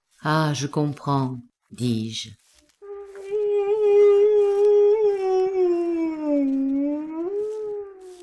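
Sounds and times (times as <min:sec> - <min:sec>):
speech: 0:00.2 - 0:02.4
dog mourning its dead master howling mournfully: 0:02.8 - 0:08.2.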